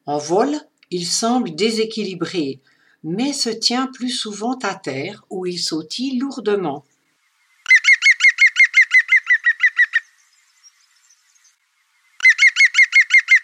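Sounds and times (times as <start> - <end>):
speech: 0.0 - 6.9
European green woodpecker calling: 6.9 - 13.4.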